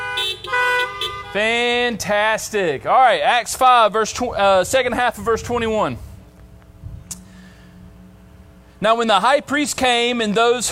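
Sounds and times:
several car horns honking: 0.0s - 2.0s
speech: 1.3s - 6.1s, 8.8s - 10.7s.

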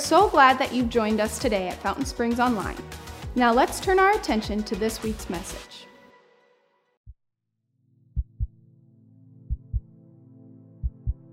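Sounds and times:
speech: 0.1s - 5.9s
deep thumping heartbeat sound effect: 8.2s - 8.5s, 9.5s - 9.9s, 10.8s - 11.3s.

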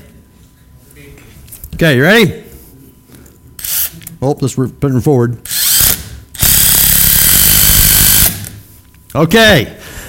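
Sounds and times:
speech: 1.0s - 2.4s, 4.2s - 5.6s, 9.2s - 9.8s
power drill driving a screw into boards: 5.5s - 8.5s.

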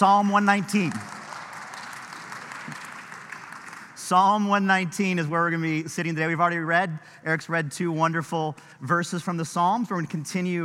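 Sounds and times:
speech: 0.0s - 1.1s, 4.1s - 10.6s
crowd applauding: 0.2s - 4.2s.

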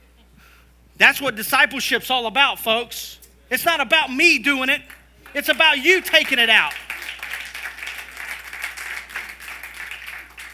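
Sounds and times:
speech: 1.0s - 6.8s
audience clapping: 4.8s - 10.5s.

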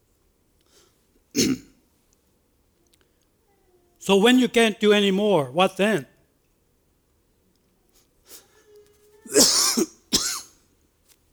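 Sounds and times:
person coughing harshly: 1.4s - 1.8s, 9.3s - 10.5s
soft throat-clearing rumble: 1.4s - 1.8s, 9.3s - 10.5s
speech: 4.0s - 6.1s.

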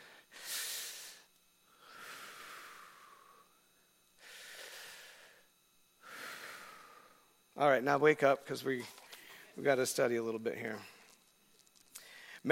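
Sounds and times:
deep slow breaths: 0.0s - 7.5s, 8.9s - 9.6s, 11.9s - 12.4s
speech: 7.6s - 9.0s, 9.6s - 10.9s.

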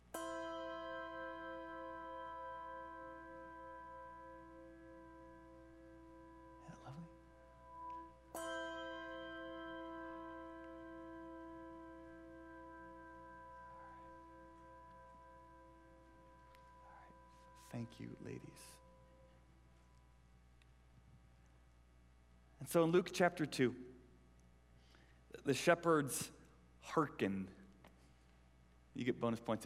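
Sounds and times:
several bells ringing together: 0.0s - 19.5s
speech: 17.7s - 18.8s, 22.6s - 23.9s, 25.4s - 27.6s, 29.0s - 29.6s.

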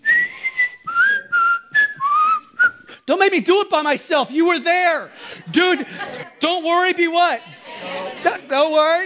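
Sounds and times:
person whistling a short bouncy melody: 0.0s - 3.0s
breaths: 2.8s - 3.1s, 5.1s - 6.3s
speech: 3.1s - 7.5s, 8.2s - 9.0s
laughter: 4.5s - 9.0s.

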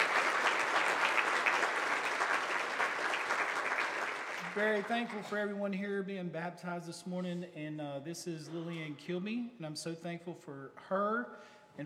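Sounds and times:
audience at a Baptist church clapping in praise: 0.0s - 5.6s
speech: 4.6s - 11.8s.

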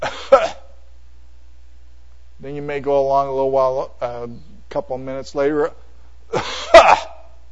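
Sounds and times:
single harsh cough: 0.0s - 0.8s, 6.3s - 7.2s
speech: 2.4s - 5.8s.

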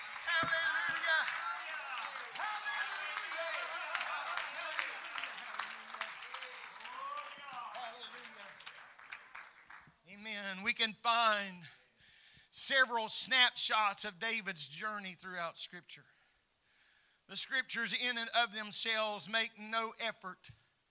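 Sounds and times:
audience applause: 0.0s - 9.9s
speech: 10.8s - 11.8s, 12.6s - 16.2s, 17.3s - 20.6s.

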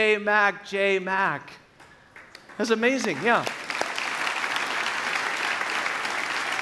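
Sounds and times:
speech: 0.0s - 1.6s, 2.6s - 3.6s
sizeable audience clapping: 1.8s - 6.6s.

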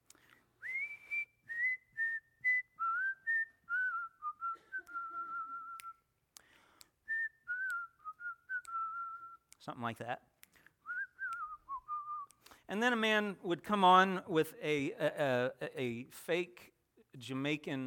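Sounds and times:
breaths between whistled phrases: 0.0s - 0.6s, 6.4s - 7.1s, 10.5s - 10.9s, 12.4s - 12.7s
person whistling a bouncy lilting melody: 0.6s - 6.1s, 7.0s - 9.6s, 10.8s - 12.5s
speech: 9.6s - 10.3s, 12.7s - 17.8s.

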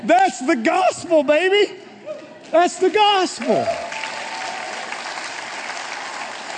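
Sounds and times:
speech: 0.1s - 1.9s, 2.5s - 3.8s
soft scattered golf clap from small audience: 2.4s - 6.5s.

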